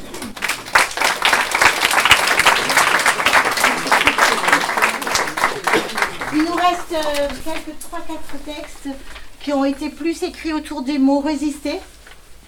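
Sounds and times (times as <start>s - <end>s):
laughter: 0.0s - 11.2s
crowd applauding: 0.0s - 12.4s
speech: 6.7s - 12.0s.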